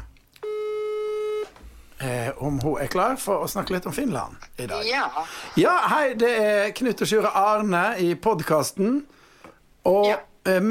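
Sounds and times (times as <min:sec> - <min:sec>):
telephone call ringing tone: 0:00.4 - 0:01.6
speech: 0:02.0 - 0:09.2, 0:09.8 - 0:10.6.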